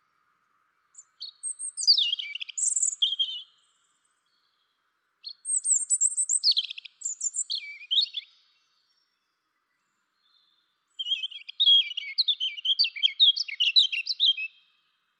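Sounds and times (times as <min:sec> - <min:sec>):
European robin song, Erithacus rubecula: 0:00.8 - 0:14.9.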